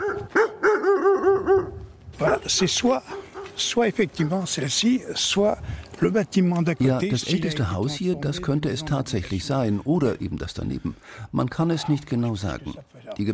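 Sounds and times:
dog whining yips: 0.0 - 1.8
dog barking: 0.0 - 3.6
speech: 2.5 - 13.3.

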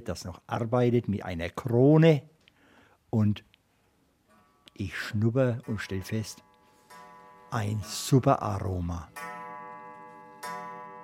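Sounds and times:
speech: 0.0 - 2.4, 3.1 - 3.5, 4.8 - 6.5, 7.5 - 9.3
old wall clock chiming in an inn's guest room: 4.3 - 11.0.

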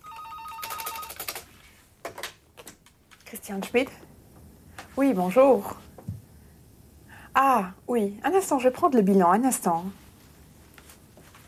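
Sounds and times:
telephone ringing at a bank office: 0.0 - 1.4
speech: 3.3 - 4.1, 5.0 - 5.9, 7.4 - 10.0.

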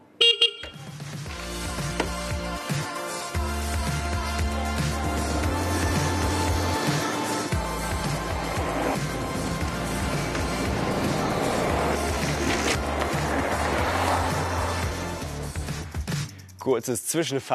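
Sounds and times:
music with a droning bass line: 0.0 - 17.5
electric horn beep of a speed pedelec electric bike: 0.2 - 1.0
speech: 16.7 - 17.5.

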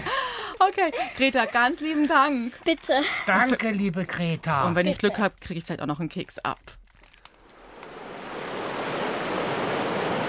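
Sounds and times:
speech: 0.6 - 6.8
moderate surf with breaking waves rolling in: 7.5 - 10.2.

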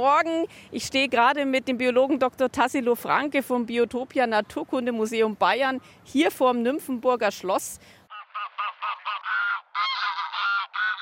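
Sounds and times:
speech: 0.0 - 8.0
ducks calling: 8.1 - 11.0
flock of greylag geese honking and cackling: 8.1 - 11.0.

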